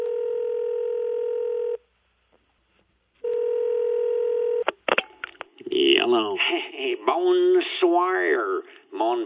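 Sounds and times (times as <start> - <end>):
long steady telephone ringback tones: 0.0 - 1.8, 3.2 - 4.6
sharp click of phone line picking up: 0.0 - 1.8, 3.2 - 4.8
man speaking over the phone connection: 5.6 - 9.2
speech: 6.1 - 9.2.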